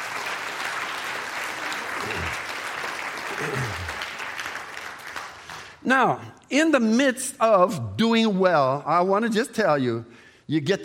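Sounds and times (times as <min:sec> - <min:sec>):
congregation clapping hands during a church service: 0:00.0 - 0:05.8
speech: 0:03.4 - 0:03.9, 0:05.8 - 0:10.8.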